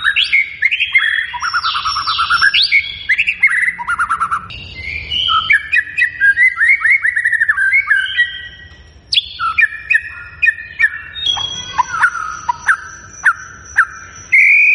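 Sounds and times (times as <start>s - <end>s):
thin steady high tone: 0.0s - 14.7s
white-rumped shama singing: 0.0s - 14.7s.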